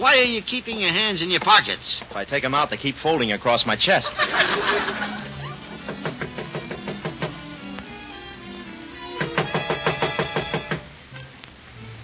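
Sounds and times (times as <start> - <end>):
speech: 0.0 - 5.3
laughter: 4.0 - 6.5
rapid knocking on a door: 5.8 - 7.4, 9.2 - 10.9.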